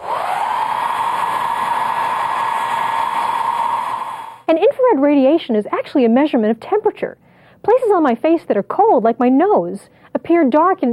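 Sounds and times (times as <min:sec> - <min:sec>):
blow dryer running with motor whine: 0:00.0 - 0:04.5
speech: 0:04.5 - 0:10.9.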